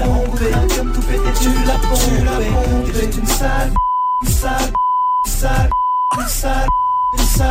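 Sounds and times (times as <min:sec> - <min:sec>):
sung vocals with music: 0:00.0 - 0:07.5
speech: 0:03.4 - 0:07.5
censorship beep over song lyrics: 0:03.8 - 0:07.2.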